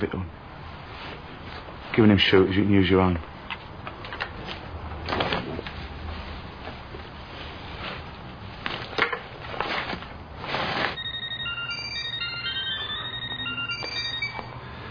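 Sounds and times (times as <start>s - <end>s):
speech: 0.0s - 0.4s, 1.9s - 3.3s
low hum: 0.0s - 14.8s
clattering and shuffling: 3.5s - 11.0s
telephone with bright trilling electronic ring: 11.0s - 14.8s.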